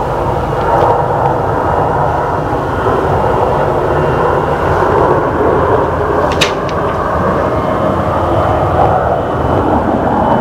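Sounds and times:
airplane jet engine roar while landing in New York and rolling along the runway: 0:00.0 - 0:10.3
sharp click: 0:06.3 - 0:07.0.

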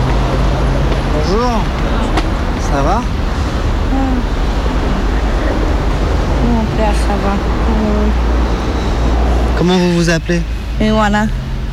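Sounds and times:
car engines rumbling in a parking lot: 0:00.0 - 0:11.7
road noise: 0:00.0 - 0:11.7
speech: 0:01.3 - 0:02.0, 0:02.7 - 0:03.2, 0:06.8 - 0:08.4, 0:09.6 - 0:11.4.

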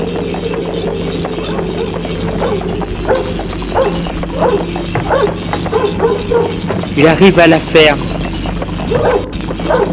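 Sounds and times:
steady low rumbling background: 0:00.0 - 0:09.9
dog barking: 0:01.8 - 0:06.6, 0:08.9 - 0:09.9
speech: 0:07.0 - 0:08.1, 0:08.9 - 0:09.9.

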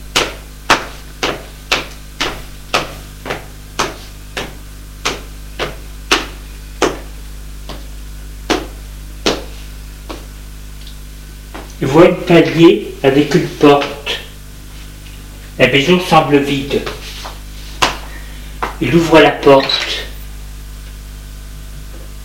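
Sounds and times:
low hum: 0:00.0 - 0:22.2
footsteps going down wooden stairs: 0:00.1 - 0:10.4, 0:11.5 - 0:11.8, 0:13.4 - 0:15.5, 0:16.5 - 0:18.8
speech: 0:11.8 - 0:14.0, 0:15.6 - 0:17.0, 0:18.8 - 0:20.0.

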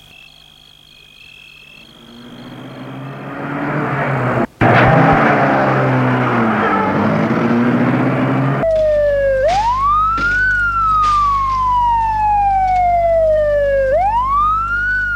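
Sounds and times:
ambulance siren wailing at night: 0:01.7 - 0:15.1
loud rushing noise: 0:01.9 - 0:08.6.

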